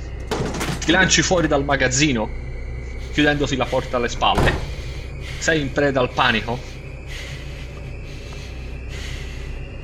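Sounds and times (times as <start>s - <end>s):
constant low rumbling drone: 0.0s - 9.8s
speech: 0.9s - 2.4s, 3.2s - 4.7s, 5.4s - 6.7s
raspy wheezing breath of a pursuing creature: 2.8s - 9.8s.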